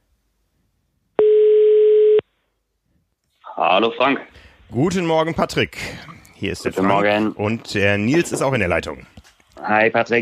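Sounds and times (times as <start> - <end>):
telephone tone while a phone call is placed: 1.2 - 2.2
speech: 3.6 - 10.2.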